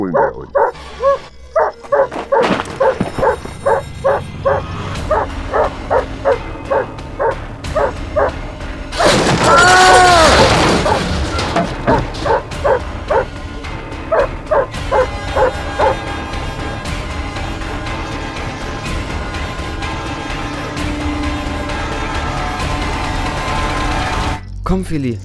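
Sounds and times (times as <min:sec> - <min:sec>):
speech: 0:00.0 - 0:01.0, 0:24.9 - 0:25.2
dogs barking: 0:00.0 - 0:23.8
dog whining howl: 0:00.2 - 0:08.4, 0:09.0 - 0:11.0, 0:11.8 - 0:13.3, 0:14.1 - 0:16.0.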